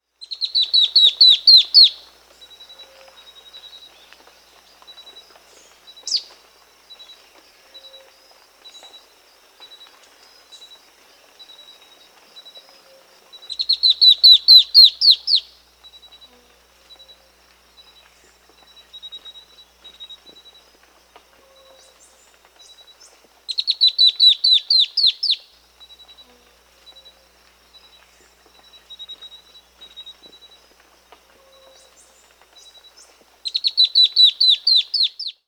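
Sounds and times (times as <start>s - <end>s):
Black-throated Antbird Myrmeciza atrothorax calling in Bolivia: 0.2s - 2.1s, 13.4s - 15.6s, 23.5s - 25.4s, 31.4s - 35.4s.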